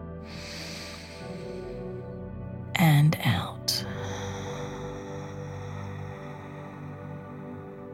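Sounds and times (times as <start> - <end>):
deep breath drawn in through the nose during a guided breathing exercise: 0.2 - 2.3, 3.8 - 7.9.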